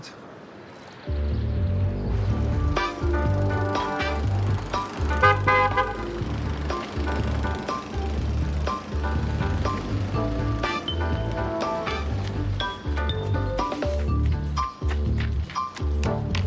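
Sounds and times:
car engine rumbling as the vehicle passes: 0:00.0 - 0:15.5
car horn blaring in loud uneven bursts: 0:05.0 - 0:06.6.

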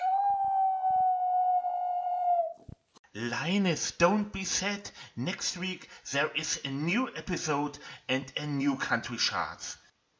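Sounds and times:
dog howling: 0:00.0 - 0:02.6
speech: 0:03.2 - 0:09.8.

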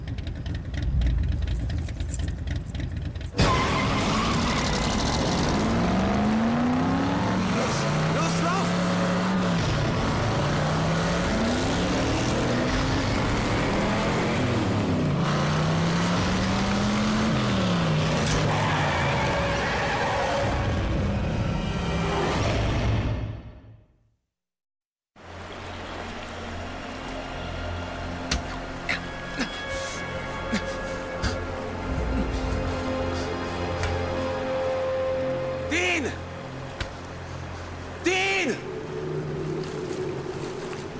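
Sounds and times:
car driving past with engine revving: 0:00.0 - 0:22.0
steady road and wind noise: 0:00.0 - 0:23.1, 0:25.2 - 0:40.9.

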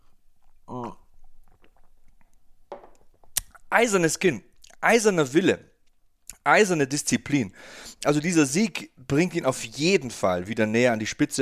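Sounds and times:
slurping and swallowing of coffee: 0:00.4 - 0:02.3
speech: 0:03.7 - 0:05.7, 0:06.4 - 0:11.3.

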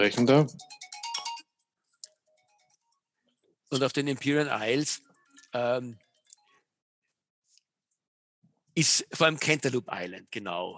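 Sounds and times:
speech: 0:00.0 - 0:00.7, 0:03.7 - 0:06.0, 0:08.8 - 0:10.7
mobile phone ringing with bright electronic ringtone: 0:00.6 - 0:01.6, 0:02.2 - 0:02.9.

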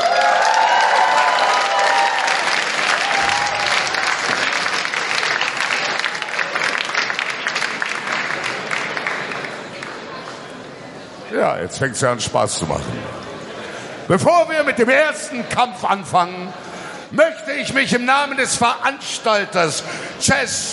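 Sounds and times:
crowd applauding: 0:00.0 - 0:10.3
speech: 0:11.6 - 0:13.3, 0:14.1 - 0:20.7.

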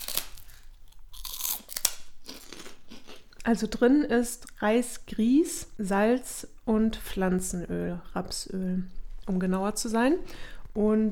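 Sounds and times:
crunchy bites and chewing of a rice cake: 0:00.0 - 0:03.3
speech: 0:03.4 - 0:11.1.

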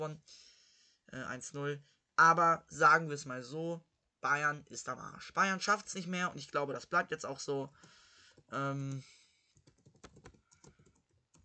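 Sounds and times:
speech: 0:00.0 - 0:00.5, 0:01.1 - 0:09.2
someone typing on a computer keyboard: 0:09.6 - 0:11.4.

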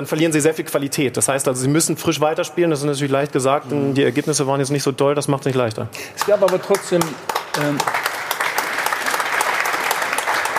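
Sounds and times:
speech: 0:00.0 - 0:08.0
audience applause: 0:06.2 - 0:10.5.

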